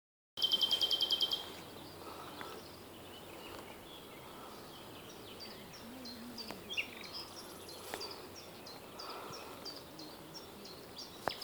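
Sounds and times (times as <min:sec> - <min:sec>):
common nightingale singing: 0:00.4 - 0:11.4.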